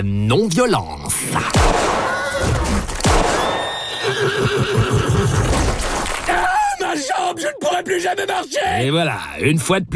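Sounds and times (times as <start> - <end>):
speech: 0.0 - 2.9, 4.2 - 5.8, 7.0 - 9.9
horse whinnying: 3.4 - 5.6.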